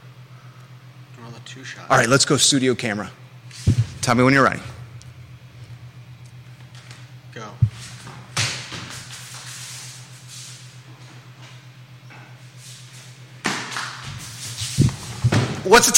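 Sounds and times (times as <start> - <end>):
low electrical hum: 0.0 - 15.9
speech: 1.4 - 4.7, 15.8 - 15.9
knocks and bumps of a sign being jostled: 3.7 - 4.2.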